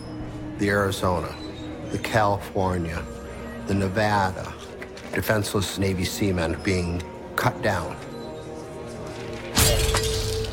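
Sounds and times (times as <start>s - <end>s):
speech: 0.6s - 8.1s
window shattering from a spent bullet strike: 9.6s - 10.5s.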